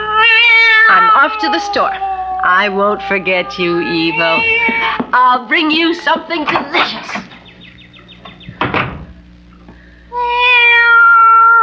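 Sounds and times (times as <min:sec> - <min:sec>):
cat meowing: 0:00.0 - 0:05.0, 0:10.1 - 0:11.6
speech: 0:01.2 - 0:07.3
door knocking and thudding: 0:08.2 - 0:09.2.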